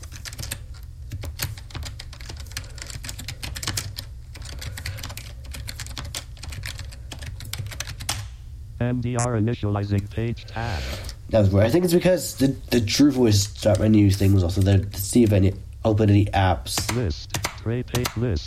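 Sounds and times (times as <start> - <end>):
rapid typing on a computer keyboard: 0.0 - 8.2, 16.8 - 18.4
low steady hum: 0.0 - 18.4
speech: 8.8 - 18.4.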